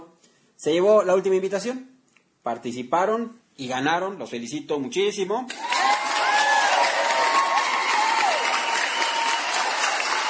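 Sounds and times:
speech: 0:00.6 - 0:05.9
crowd applause: 0:05.5 - 0:10.2
crowd whoops and shouts: 0:05.5 - 0:10.2.

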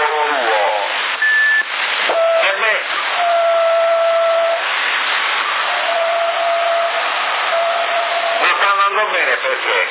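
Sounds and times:
continuous band-limited hiss on a CB radio link: 0:00.0 - 0:09.9
thin steady whistle tone over a CB radio link: 0:01.2 - 0:04.7, 0:05.7 - 0:08.6.

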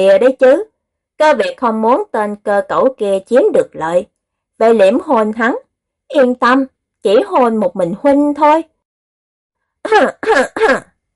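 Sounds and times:
speech: 0:00.0 - 0:08.7, 0:09.8 - 0:10.9
voice performing dry coughs for a monk coughing hard: 0:10.2 - 0:11.0.

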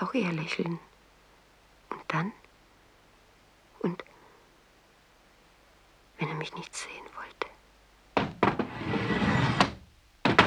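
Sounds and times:
speech: 0:00.1 - 0:00.9, 0:02.1 - 0:02.4, 0:03.8 - 0:04.1, 0:06.2 - 0:07.6
metal door bolts clacking as they are drawn open: 0:08.2 - 0:10.4.

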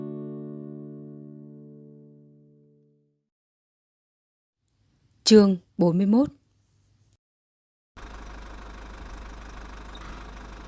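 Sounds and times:
speech: 0:05.3 - 0:06.4
car engine idling downstairs: 0:08.0 - 0:10.6.

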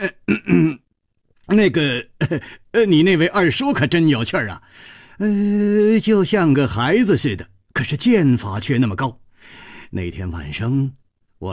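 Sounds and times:
dry coughs voiced by a storyteller: 0:00.0 - 0:00.8
speech: 0:00.0 - 0:00.8, 0:01.5 - 0:11.5
throat clearing voiced by a storyteller: 0:00.0 - 0:00.9.

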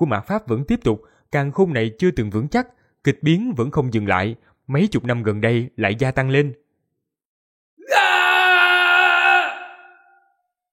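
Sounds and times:
speech: 0:00.0 - 0:06.6
man screaming in agony in a golden palace hall: 0:07.8 - 0:10.3.

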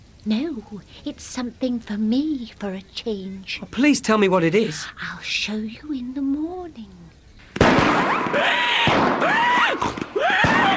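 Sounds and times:
speech: 0:00.2 - 0:07.0, 0:07.8 - 0:10.7
fireworks exploding at a fair: 0:07.5 - 0:10.7.

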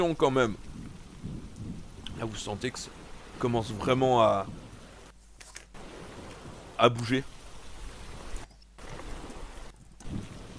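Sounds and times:
speech: 0:00.0 - 0:01.4, 0:02.2 - 0:04.6, 0:06.8 - 0:07.3
wind noise during a storm: 0:00.0 - 0:10.5
heavy rain beating on an aircraft cabin during a storm: 0:01.9 - 0:05.1, 0:05.7 - 0:10.5.

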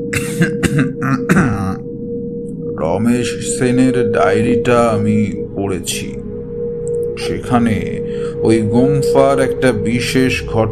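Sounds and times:
low steady hum: 0:00.0 - 0:10.7
throat clearing in rough raspy coughing bursts: 0:00.2 - 0:01.8
speech: 0:00.2 - 0:01.9, 0:02.8 - 0:06.2, 0:07.2 - 0:10.7.

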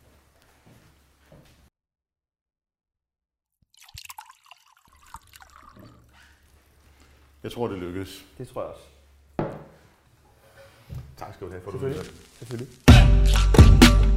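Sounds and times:
water poured into a glass: 0:03.7 - 0:06.3
speech: 0:07.4 - 0:09.0, 0:11.4 - 0:13.6.

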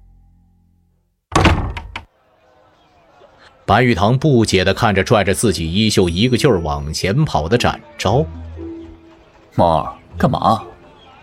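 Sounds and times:
room door pulled shut with a heavy thunk: 0:01.3 - 0:02.1
speech: 0:03.7 - 0:08.4, 0:09.6 - 0:10.7.

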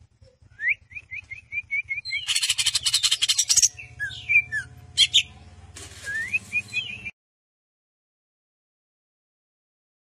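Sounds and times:
greater green leafbird song: 0:00.0 - 0:07.1
low hum: 0:00.0 - 0:07.1.

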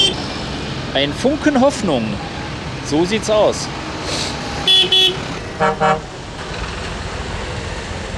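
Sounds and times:
lit-up container truck horn honking: 0:00.0 - 0:00.2, 0:04.6 - 0:06.2
truck engine and road rumble: 0:00.0 - 0:08.1
speech: 0:01.0 - 0:02.3, 0:02.9 - 0:03.8, 0:04.8 - 0:06.1.

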